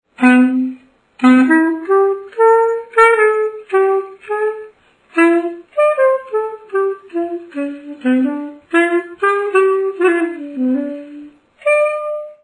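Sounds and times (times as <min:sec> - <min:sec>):
C classic Xaphoon playing: 0:00.2 - 0:12.3.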